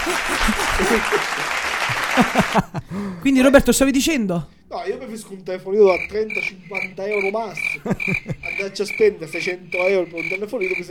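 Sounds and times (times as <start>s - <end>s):
studio audience clapping: 0.0s - 3.0s
laughter: 0.0s - 3.2s, 6.0s - 10.8s
speech: 0.1s - 10.8s.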